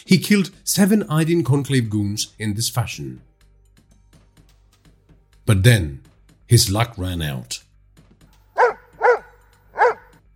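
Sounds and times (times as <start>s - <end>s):
speech: 0.0s - 3.3s, 5.5s - 7.6s
dog barking: 8.6s - 10.2s.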